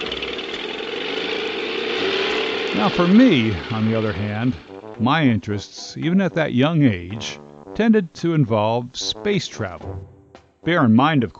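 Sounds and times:
small outboard motor starting up and droning: 0.0 - 5.0
speech: 2.8 - 11.3.

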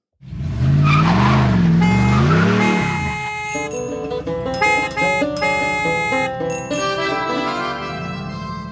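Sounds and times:
wavering tire-screech sound effect in a radio traffic jingle: 0.3 - 3.1
bright synth melody of stepped notes: 2.0 - 8.0.

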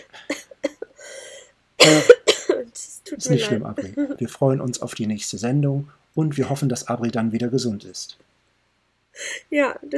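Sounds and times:
unwell woman coughing: 0.3 - 1.0, 1.8 - 4.0
speech: 3.2 - 8.3, 9.3 - 9.9.

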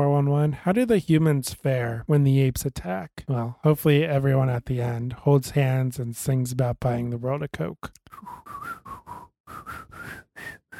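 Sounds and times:
speech: 0.0 - 8.6
badly whistled breathy tune: 8.1 - 10.7.

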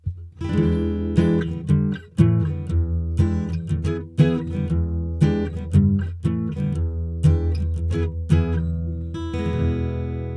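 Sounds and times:
guitar strumming chords in a simple tune: 0.1 - 10.3.

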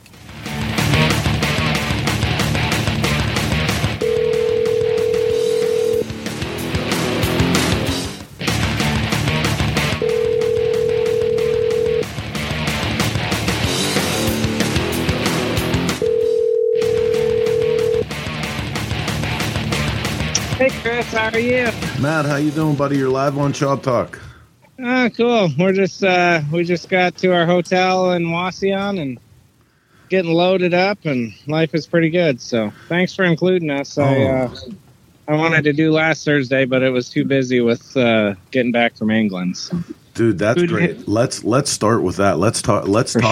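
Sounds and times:
loud continuous radio music bed: 0.0 - 24.2
telephone ringback tone: 4.0 - 6.2, 10.0 - 12.1, 15.9 - 18.1
speech: 21.2 - 24.2, 24.8 - 29.2, 30.1 - 43.3.

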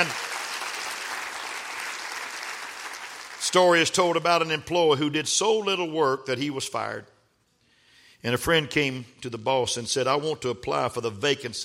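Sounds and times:
church audience clapping during a service: 0.0 - 4.2
speech: 3.4 - 7.1, 8.2 - 11.6.

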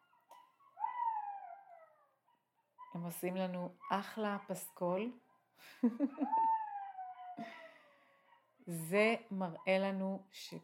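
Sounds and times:
jackals howling: 0.0 - 5.2, 6.1 - 8.8
speech: 3.0 - 6.5, 8.7 - 10.6.

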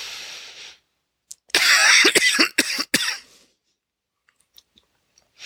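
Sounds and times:
sharp harsh breathy coughs from one person: 1.5 - 3.3.

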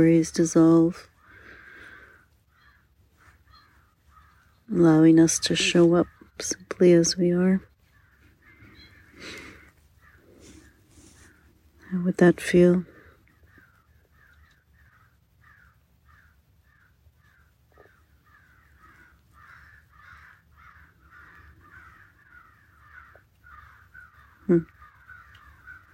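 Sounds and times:
speech: 0.0 - 1.1, 4.7 - 7.7, 9.2 - 9.4, 11.9 - 12.9, 24.5 - 24.7
crows cawing: 1.2 - 4.6, 7.9 - 10.7, 13.3 - 25.9.

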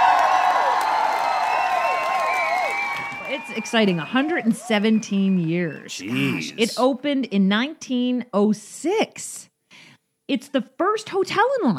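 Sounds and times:
dense crowd clapping and cheering for a hotel and casino anniversary: 0.0 - 6.6
speech: 3.4 - 11.7.

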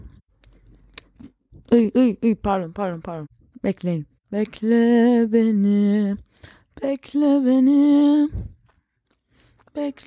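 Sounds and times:
wet chewing and smacking of soft cake: 0.0 - 1.8, 8.6 - 10.0
speech: 1.7 - 8.5, 9.8 - 10.0.

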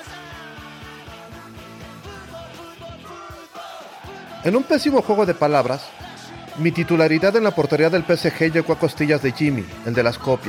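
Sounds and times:
football stadium crowd chanting in the stands: 2.6 - 9.4
football stadium crowd yelling together: 3.0 - 10.4
speech: 4.4 - 6.0, 6.6 - 10.4.

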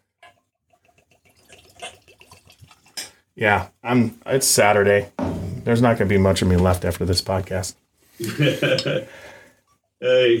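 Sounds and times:
whiskey pouring into a rocks glass: 0.7 - 3.2
speech: 3.4 - 9.3, 10.0 - 10.3.

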